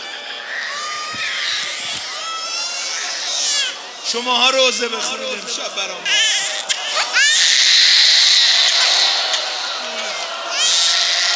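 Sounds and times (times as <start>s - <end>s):
crowd of people crying and wailing: 0.0s - 11.3s
speech: 4.1s - 6.4s
laughter: 5.0s - 11.3s.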